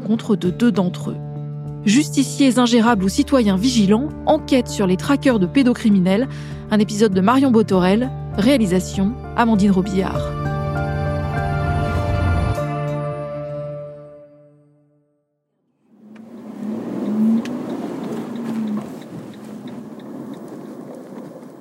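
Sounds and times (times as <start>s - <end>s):
speech: 0.1s - 10.4s
road noise: 9.8s - 12.7s, 15.8s - 21.5s
sustained tonal sound: 10.2s - 14.6s
car low engine rumble in a small village in the Normandy countryside: 15.9s - 21.5s.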